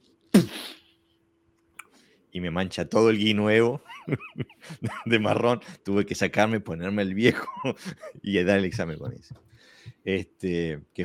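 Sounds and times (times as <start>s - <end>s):
voice imitating a Coca-Cola bottle fizzing over: 0.3s - 0.9s
speech: 2.3s - 11.0s
laughter: 7.2s - 9.6s.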